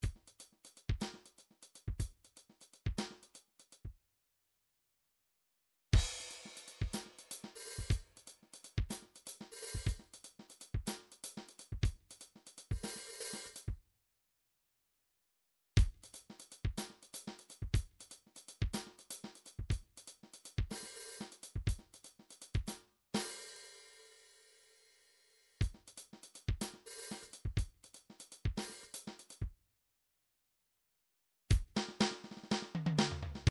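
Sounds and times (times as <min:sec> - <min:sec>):
MIDI drums in half time: 0:00.0 - 0:03.8, 0:06.0 - 0:13.7, 0:15.8 - 0:23.6, 0:25.6 - 0:29.5, 0:31.5 - 0:33.4.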